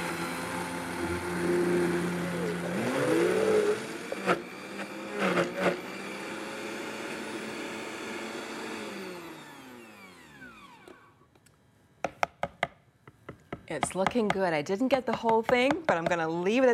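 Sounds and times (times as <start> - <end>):
high-powered blender whirring as it churns frozen banana: 0.0 - 11.2
speech: 13.8 - 16.7.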